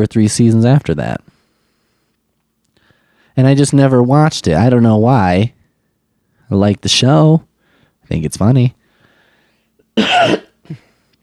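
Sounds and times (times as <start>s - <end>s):
speech: 0.0s - 1.3s, 3.4s - 5.6s, 6.5s - 7.5s, 8.1s - 8.8s, 10.0s - 10.8s
sharp harsh cough: 10.0s - 11.0s.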